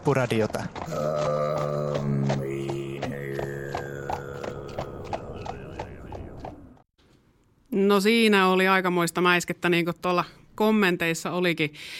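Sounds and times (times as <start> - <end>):
speech: 0.0 - 2.5, 7.8 - 11.9
horse hooves clip-clopping while riding on the steppes: 0.0 - 6.8.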